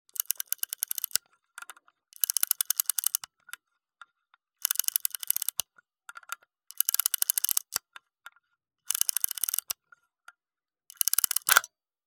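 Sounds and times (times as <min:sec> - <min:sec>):
Super 8 camera winding up slowly: 0:00.2 - 0:01.2, 0:02.2 - 0:03.2, 0:04.6 - 0:05.6, 0:06.7 - 0:07.8, 0:08.9 - 0:09.7, 0:11.0 - 0:11.7.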